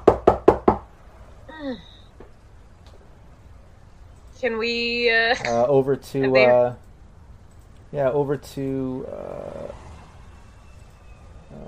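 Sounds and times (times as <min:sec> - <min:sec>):
knocking on a front door: 0:00.0 - 0:00.9
speech: 0:01.6 - 0:01.9, 0:04.4 - 0:06.8, 0:07.9 - 0:09.8.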